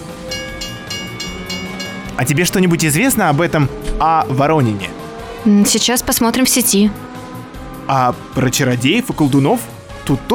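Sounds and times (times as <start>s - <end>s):
rapid regular rhythmic clatter of suburban electric train: 0.0s - 3.9s
half-empty suburban electric train rolling along the rails: 0.0s - 4.1s
speech: 2.2s - 7.1s, 7.9s - 10.3s.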